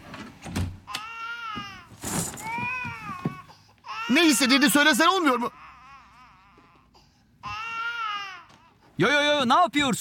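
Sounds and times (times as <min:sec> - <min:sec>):
baby crying: 0:00.9 - 0:08.8
speech: 0:04.1 - 0:05.6, 0:09.0 - 0:09.9.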